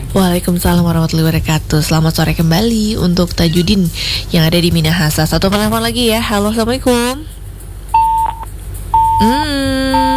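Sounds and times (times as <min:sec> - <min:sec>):
speech: 0:00.1 - 0:07.4, 0:09.2 - 0:10.1
phone call disconnect beeps: 0:08.0 - 0:09.4.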